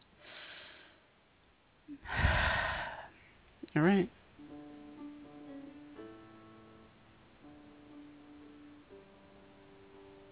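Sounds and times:
deep breath: 0.2 - 1.1, 1.9 - 3.4
speech: 1.9 - 2.2, 3.8 - 4.2.

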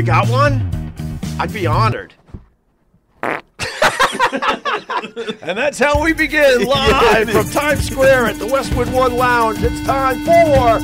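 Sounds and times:
speech: 0.0 - 0.8, 1.4 - 2.2, 4.1 - 10.8
fart: 3.1 - 3.6
laughter: 3.6 - 8.4.

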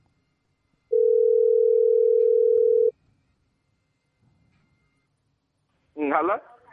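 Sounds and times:
telephone dial tone while placing a call: 0.9 - 2.9
speech: 6.2 - 6.5.

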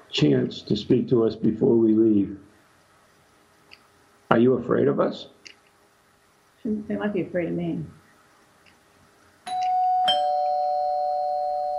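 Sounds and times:
speech: 0.1 - 2.5, 4.3 - 5.4, 6.6 - 8.0
doorbell chiming ding-dong tones: 9.5 - 11.7.

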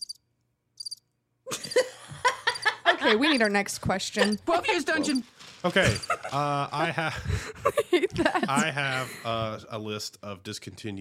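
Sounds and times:
high-pitched cricket chirps: 0.0 - 0.2, 0.8 - 1.0
laughter: 1.5 - 9.5
speech: 3.1 - 10.9.

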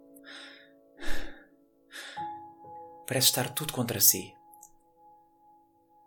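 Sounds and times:
person breathing heavily while climbing: 0.2 - 2.4
speech: 3.1 - 4.4.

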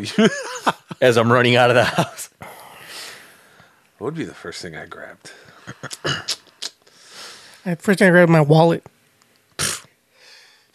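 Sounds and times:
laughter: 0.0 - 2.2, 5.5 - 6.3
speech: 0.0 - 2.3, 4.0 - 6.2, 7.6 - 9.0
soft breathy exhale: 2.4 - 3.8, 6.9 - 7.6, 10.2 - 10.7
person sneezing: 5.8 - 6.8, 9.6 - 9.9.

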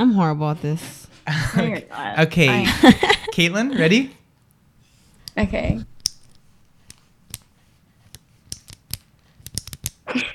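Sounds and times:
speech: 0.0 - 4.2, 5.4 - 5.9
laughter: 1.3 - 4.0
pen top clicking: 6.0 - 7.5, 8.1 - 10.0.

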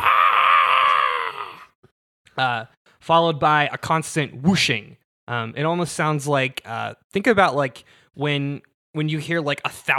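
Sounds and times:
human voice imitating a blood-curdling shriek: 0.0 - 1.8
speech: 2.4 - 9.9.

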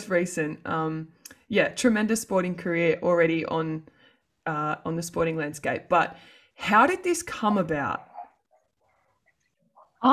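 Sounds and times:
speech: 0.1 - 8.1
speaker's dog barking and yipping: 8.0 - 9.1.

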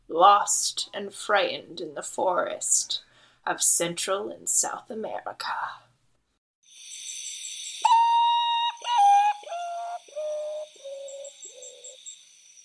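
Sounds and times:
speech: 0.2 - 5.9
high-pitched night chorus of insects: 6.7 - 12.6
common potoo melancholy call: 7.8 - 12.2.

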